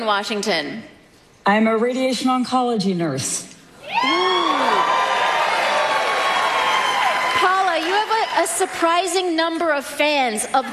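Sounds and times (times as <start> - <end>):
speech: 0.0 - 4.4, 8.4 - 10.7
single voice whooping: 3.8 - 5.4
live audience clapping and cheering: 4.0 - 9.2.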